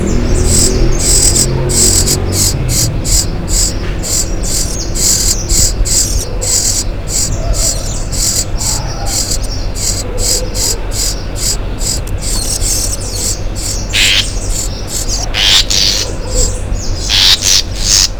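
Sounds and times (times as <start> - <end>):
Troglodytes aedon alarm call: 0.0 - 18.1.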